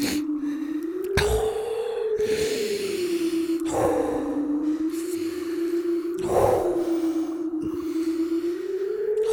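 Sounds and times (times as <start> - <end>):
heavy breathing: 0.0 - 9.3.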